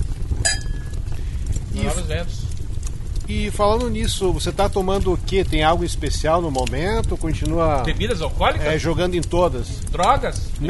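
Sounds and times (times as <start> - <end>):
low rumble: 0.0 - 10.6
glasses clinking in a toast: 0.4 - 0.9
speech: 1.8 - 2.5, 3.3 - 10.6.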